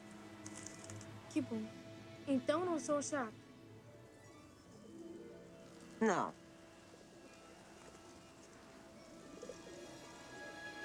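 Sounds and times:
steady hiss: 0.0 - 10.8
speech: 1.3 - 3.4, 6.0 - 6.4
pigeons cooing: 6.8 - 10.8.

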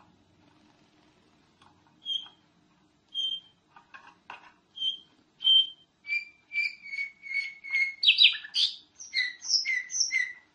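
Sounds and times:
nightingale song: 2.0 - 2.4, 3.1 - 3.6, 4.7 - 10.5.

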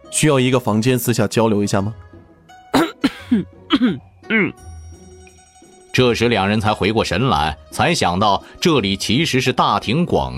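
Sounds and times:
speech: 0.1 - 2.1, 3.3 - 4.7, 6.0 - 10.3
man clearing his throat: 2.8 - 4.6
man giving an awkward, embarrassed cough: 2.8 - 4.6.

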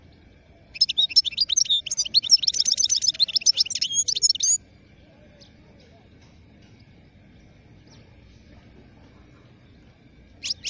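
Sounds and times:
wild European goldfinch song: 0.0 - 10.6.

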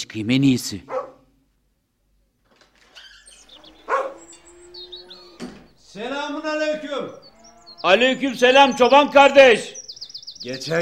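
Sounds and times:
speech: 0.1 - 0.9, 7.8 - 9.8, 10.4 - 10.8
guard dog barking to announce someone's arrival: 0.9 - 1.3, 3.6 - 4.4
birds chirping: 2.9 - 10.8.

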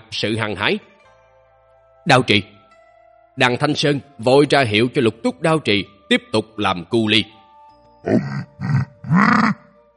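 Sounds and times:
speech: 0.1 - 0.9, 2.0 - 2.5, 3.4 - 7.4, 8.0 - 9.6
creature's low discontented growl: 8.0 - 9.7.

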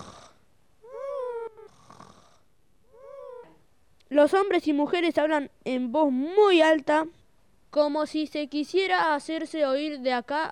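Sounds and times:
king snoring asleep on his throne: 0.0 - 3.4
speech: 4.2 - 10.5.

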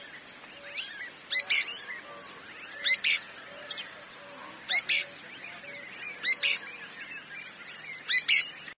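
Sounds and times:
constant high hum: 0.0 - 8.7
pale-breasted spinetail Synallaxis albescens inaequalis giving paired sharp chirps: 0.0 - 8.7.

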